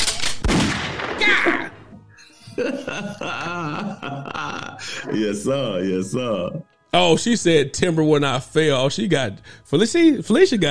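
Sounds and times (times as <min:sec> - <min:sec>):
gunshot sound effects: 0:00.0 - 0:01.5
people laughing: 0:02.0 - 0:06.6
speech: 0:02.6 - 0:10.6.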